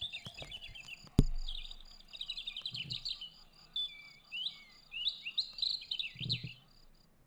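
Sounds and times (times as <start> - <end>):
small bird chirping in high-pitched twittering: 0.0 - 7.1
sharp knock: 1.2 - 1.9.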